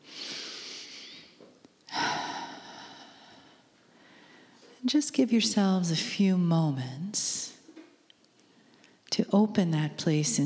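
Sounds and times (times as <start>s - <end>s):
slow deep breath during a guided relaxation: 0.0s - 4.7s
speech: 4.8s - 7.5s, 9.3s - 10.4s.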